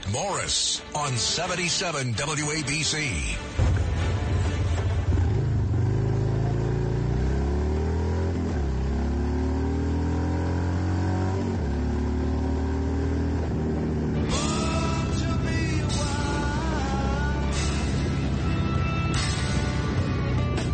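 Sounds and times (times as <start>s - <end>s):
speech: 0.1s - 3.8s
motorcycle engine revving and accelerating through gear shifts: 4.8s - 20.7s.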